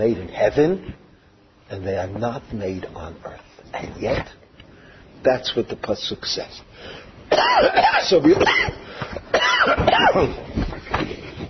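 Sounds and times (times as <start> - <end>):
speech: 0.0 - 1.0, 1.7 - 4.4, 5.2 - 10.7
harsh raspy coughing: 7.3 - 10.5
throat clearing: 7.3 - 10.5.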